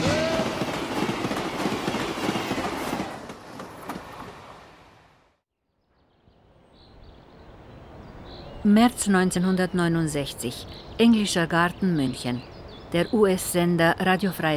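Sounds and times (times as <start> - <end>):
train rolling on rails: 0.0 - 5.2
speech: 8.6 - 14.5.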